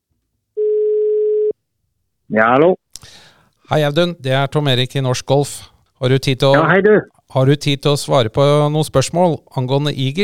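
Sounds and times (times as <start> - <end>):
outgoing telephone call ringing tone: 0.6 - 1.6
speech: 2.3 - 10.2.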